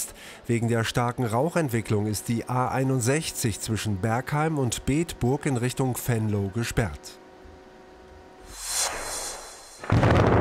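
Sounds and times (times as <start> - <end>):
speech: 0.5 - 7.2
demolition blast of three buildings of a disused coal power plant on the Lower Rhine: 9.8 - 10.3.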